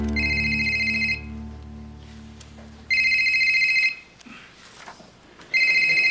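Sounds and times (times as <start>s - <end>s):
telephone ringing: 0.1s - 1.3s, 2.9s - 4.1s, 5.5s - 6.1s.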